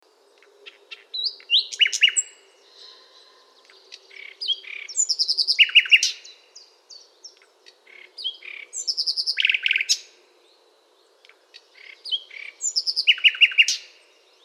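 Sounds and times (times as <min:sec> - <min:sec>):
common nightingale Luscinia megarhynchos singing strophes of varied whistles: 0:00.1 - 0:14.4.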